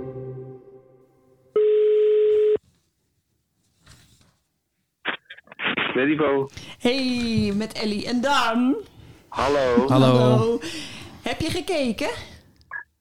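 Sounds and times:
steady flat telephone tone: 1.6s - 2.6s
speech: 6.0s - 12.3s.

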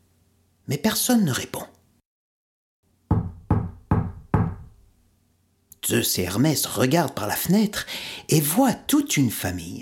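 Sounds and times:
speech: 0.7s - 1.7s, 5.9s - 9.7s
knocking on the wooden door of a house: 3.1s - 4.8s.

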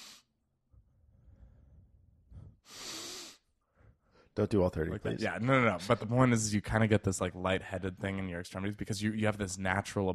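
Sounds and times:
Wim Hof style deep breathing through nose: 0.0s - 0.3s, 1.1s - 4.4s
speech: 4.4s - 10.1s.

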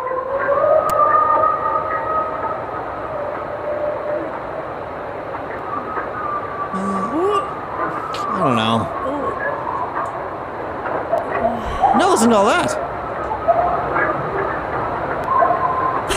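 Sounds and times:
pack of coyotes howling and yipping: 0.0s - 16.1s
person speaking: 6.7s - 9.4s, 11.3s - 12.8s.

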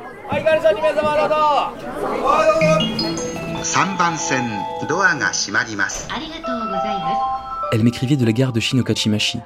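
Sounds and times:
overlapping voices chattering in a cramped busy tiny eatery in a Tokyo alley: 0.0s - 7.2s
speech: 0.3s - 3.0s, 3.6s - 9.4s
faint melodic tone: 2.6s - 8.7s.

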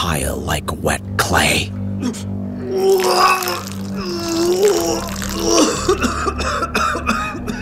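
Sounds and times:
speech: 0.0s - 7.0s
steady low hum: 0.0s - 7.6s
person retching and vomiting beside a sink: 2.7s - 6.5s.

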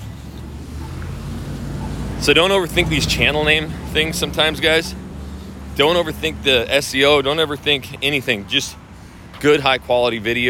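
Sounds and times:
road traffic rumble: 0.0s - 10.4s
speech: 2.2s - 5.0s, 5.8s - 8.8s, 9.4s - 10.4s.

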